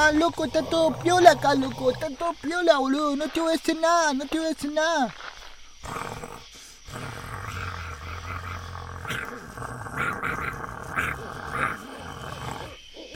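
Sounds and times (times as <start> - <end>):
werewolf growling: 0.0 - 2.3, 5.8 - 13.1
speech: 0.0 - 5.2.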